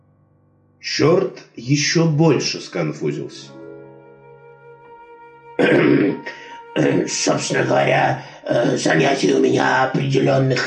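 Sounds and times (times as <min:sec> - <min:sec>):
speech: 0:00.8 - 0:03.6, 0:05.6 - 0:10.6
raspy throat clearing: 0:05.6 - 0:06.6.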